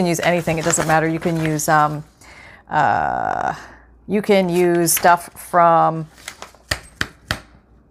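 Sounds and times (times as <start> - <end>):
speech: 0.0 - 2.1, 2.7 - 6.4
paper printouts from a digital kit being handled: 0.0 - 2.2, 4.4 - 7.0.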